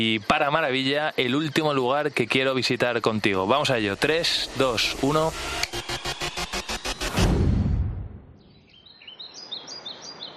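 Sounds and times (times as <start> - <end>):
many wild birds calling in marshland: 0.0 - 4.8, 8.3 - 10.3
speech: 0.0 - 6.1
rhythmic pulsing burst: 3.0 - 8.3
rushing whoosh: 3.8 - 8.6.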